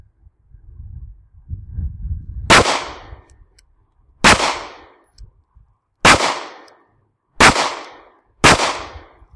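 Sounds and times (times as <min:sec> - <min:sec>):
H&K VP9 handgun pistol shots: 0:02.5 - 0:03.1, 0:04.2 - 0:05.0, 0:06.0 - 0:06.8, 0:07.4 - 0:09.1.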